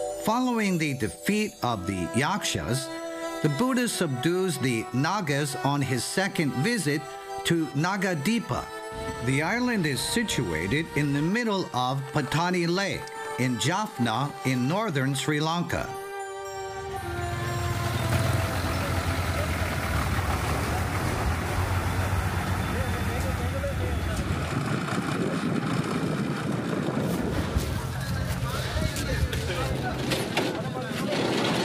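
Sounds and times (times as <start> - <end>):
speech: 0.2 - 16.0
boat engine droning on a lake trip to an island in Jaffna, northern Sri Lanka: 2.8 - 14.8, 15.7 - 31.5
wind buffeting the microphone: 24.0 - 30.4.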